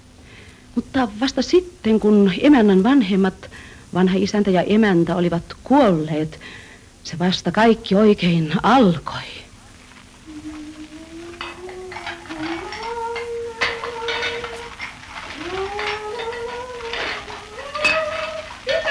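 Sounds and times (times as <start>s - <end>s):
speech: 0.8s - 9.4s
thin wavering whine: 9.7s - 18.8s
pots and cutlery clinking and clattering while dishes are washed: 9.9s - 18.8s.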